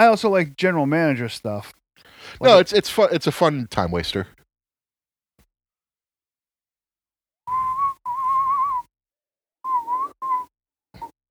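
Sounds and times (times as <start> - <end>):
speech: 0.0 - 4.4
person whistling a tune: 7.5 - 8.9, 9.7 - 11.2.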